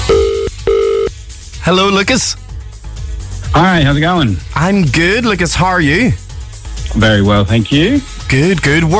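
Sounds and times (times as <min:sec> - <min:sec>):
electronic ringback tones on an outgoing phone call: 0:00.1 - 0:01.1
speech: 0:01.7 - 0:02.4, 0:03.5 - 0:06.2, 0:06.9 - 0:08.9.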